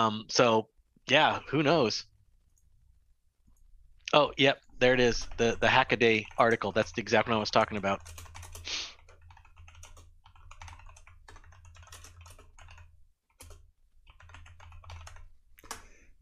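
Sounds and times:
speech: 0:00.0 - 0:02.1, 0:04.1 - 0:08.9
typing on a computer keyboard: 0:05.0 - 0:16.0.

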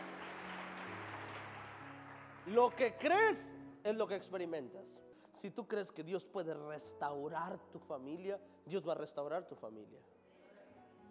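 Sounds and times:
church audience applauding: 0:00.0 - 0:03.2
speech: 0:02.5 - 0:10.1.

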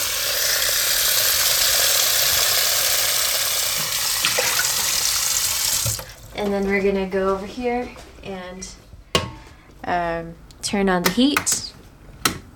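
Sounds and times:
water gushing from a tap into a metal container: 0:00.0 - 0:06.3
speech: 0:06.4 - 0:08.8, 0:09.8 - 0:11.6.

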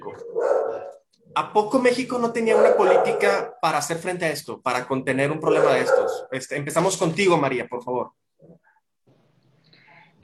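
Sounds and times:
dog barking: 0:00.0 - 0:01.0, 0:02.4 - 0:03.6, 0:05.4 - 0:06.4
speech: 0:01.4 - 0:08.2.

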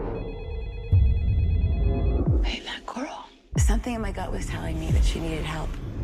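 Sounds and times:
phone's electronic ringtone: 0:00.1 - 0:02.3
speech: 0:03.8 - 0:05.9.

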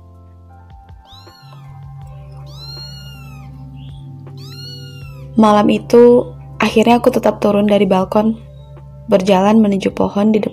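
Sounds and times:
kitten meowing: 0:00.9 - 0:05.6
steady low droning hum: 0:01.6 - 0:04.4, 0:05.0 - 0:09.5
speech: 0:05.4 - 0:08.4, 0:09.1 - 0:10.5.

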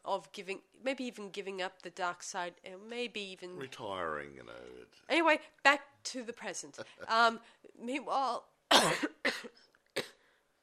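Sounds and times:
speech: 0:00.1 - 0:09.5
person coughing raspily: 0:08.7 - 0:10.2.

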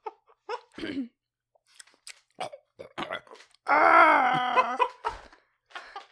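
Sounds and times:
video game character grunts and squeaks: 0:02.4 - 0:04.8.

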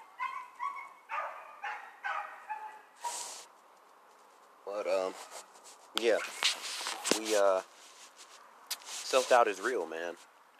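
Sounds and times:
dog barking: 0:00.0 - 0:03.4, 0:06.1 - 0:06.4
speech: 0:04.8 - 0:06.5, 0:07.2 - 0:07.7, 0:09.1 - 0:10.3.

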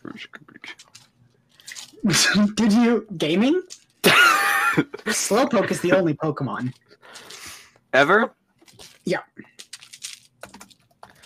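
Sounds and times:
speech: 0:00.2 - 0:00.4, 0:02.0 - 0:06.9, 0:07.9 - 0:08.4, 0:09.0 - 0:09.5
typing on a computer keyboard: 0:09.6 - 0:11.2.

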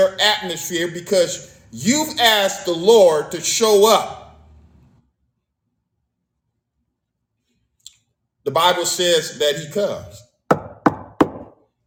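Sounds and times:
speech: 0:00.0 - 0:04.2, 0:08.4 - 0:10.2
firm knocks on a wooden door: 0:10.5 - 0:11.6.

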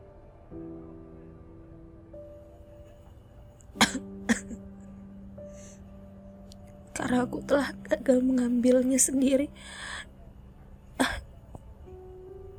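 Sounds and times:
small quick coughs: 0:03.8 - 0:04.6, 0:11.0 - 0:11.2
speech: 0:07.0 - 0:10.0.

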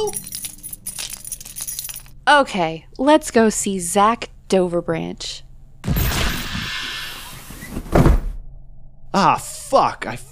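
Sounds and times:
speech: 0:00.0 - 0:00.3, 0:02.3 - 0:06.0, 0:09.2 - 0:10.3
bunch of keys jangling: 0:00.0 - 0:02.2.

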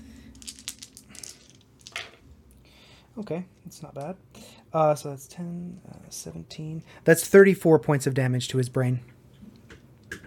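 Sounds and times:
six-sided dice clattering across a hard surface: 0:00.3 - 0:02.2
speech: 0:03.2 - 0:09.2.

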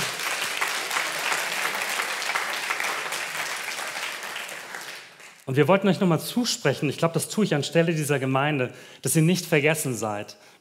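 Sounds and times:
audience applause: 0:00.0 - 0:05.4
speech: 0:05.5 - 0:10.5.

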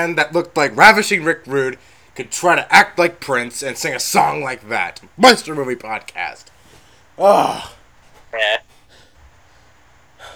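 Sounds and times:
speech: 0:00.0 - 0:06.6, 0:07.2 - 0:08.7
heavy panting after dancing: 0:06.5 - 0:10.3.

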